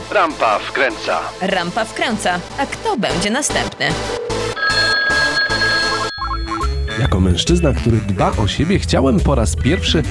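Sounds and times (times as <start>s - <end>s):
speech: 0.2s - 5.3s, 7.0s - 10.0s
telephone ringing while a call is placed to a salon: 4.4s - 7.0s.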